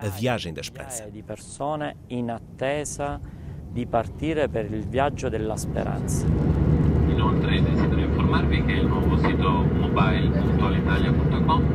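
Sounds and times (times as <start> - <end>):
speech: 0.0 - 6.7, 8.3 - 11.7
airplane taking off: 5.6 - 11.7.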